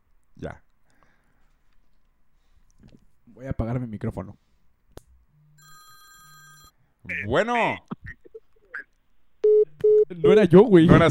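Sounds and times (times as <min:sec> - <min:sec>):
speech: 0:00.4 - 0:00.6, 0:03.4 - 0:04.4, 0:07.0 - 0:08.0, 0:10.1 - 0:11.0
telephone beeps as a call is dialed: 0:09.4 - 0:10.1.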